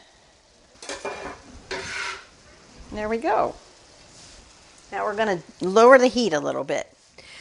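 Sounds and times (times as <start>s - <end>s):
meat browning in a pan over medium-high heat: 0.1s - 7.3s
scraping as chopped onions and peppers are scooped into a pan: 0.8s - 2.4s
speech: 2.9s - 3.6s, 4.9s - 6.9s.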